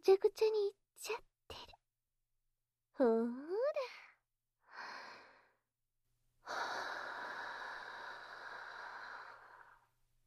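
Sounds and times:
speech: 0.0 - 1.7, 3.0 - 4.0
slow exhaled breaths: 6.5 - 9.9.

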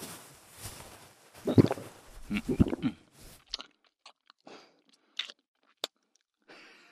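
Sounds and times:
person gulping down black tea: 1.4 - 6.4.

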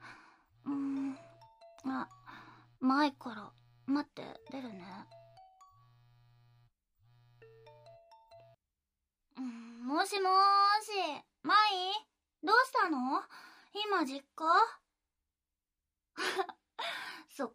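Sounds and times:
low hum: 0.6 - 4.0, 4.6 - 7.5
smartphone ringtone: 0.7 - 3.5, 4.3 - 6.0, 7.3 - 8.6
speech: 2.9 - 5.2, 9.9 - 14.8, 17.4 - 17.5.

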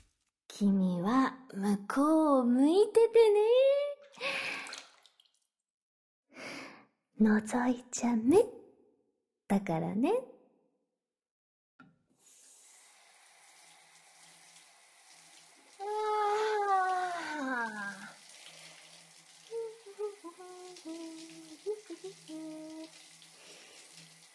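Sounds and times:
speech: 0.6 - 4.6, 7.2 - 8.6, 9.5 - 10.4
shower water spraying: 12.2 - 24.3
person humming or vocalizing in tonal bursts: 15.8 - 18.2, 19.5 - 23.0.

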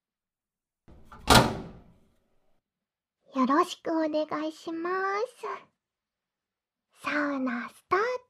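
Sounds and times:
sauna door swinging shut with a dull thump: 0.9 - 2.0
speech: 3.4 - 5.7, 7.0 - 8.2.

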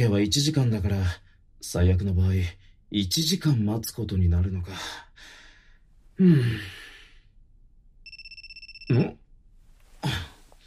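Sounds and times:
speech: 0.0 - 5.4, 6.2 - 6.9, 8.9 - 9.2
breathy sighs: 5.2 - 7.3, 10.0 - 10.6
phone ringing with a call from a withheld number: 8.0 - 9.2.

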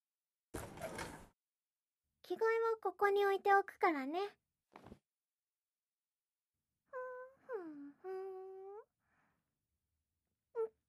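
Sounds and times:
door sliding open: 0.6 - 1.3
speech: 2.3 - 5.0.

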